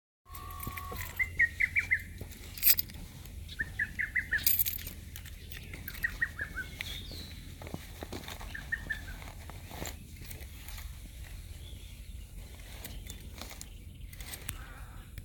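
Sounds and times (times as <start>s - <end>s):
lesser cuckoo singing a rapid stuttering phrase: 0.3s - 2.1s, 3.5s - 4.5s, 5.6s - 7.2s
low rumbling background noise: 0.6s - 15.2s.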